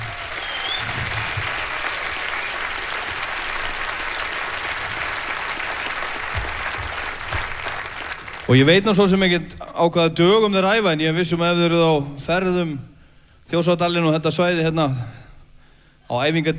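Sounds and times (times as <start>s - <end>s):
audience applause for a band: 0.0s - 8.9s
speech: 8.5s - 12.9s, 13.5s - 15.2s, 16.1s - 16.5s.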